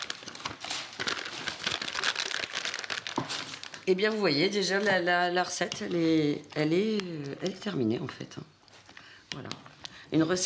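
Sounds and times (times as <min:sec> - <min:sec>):
parchment baking paper crinkling as it is laid out: 0:00.0 - 0:07.9
speech: 0:03.9 - 0:08.5, 0:09.3 - 0:10.4.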